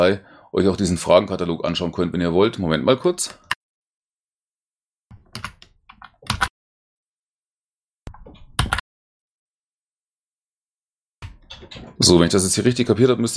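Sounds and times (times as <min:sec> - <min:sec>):
speech: 0:00.0 - 0:03.4, 0:11.7 - 0:13.3
typing on a computer keyboard to copy in a link: 0:05.2 - 0:06.5, 0:08.2 - 0:08.8.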